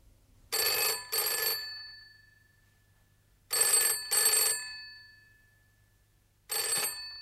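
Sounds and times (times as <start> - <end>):
telephone ringing in a double-burst pattern: 0.5 - 2.6, 3.5 - 5.4, 6.5 - 7.2.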